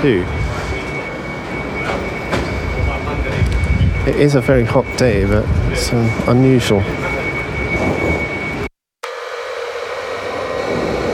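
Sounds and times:
speech: 0.0 - 0.4, 4.0 - 7.0
train rumbling at a railway station: 0.0 - 8.7
thin metallic whine of train: 0.0 - 11.1.

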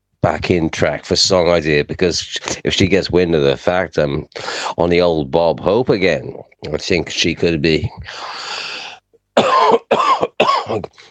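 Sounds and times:
speech: 0.4 - 8.6, 10.7 - 11.0
breathy hiss: 8.1 - 9.1
person coughing: 9.4 - 11.0.

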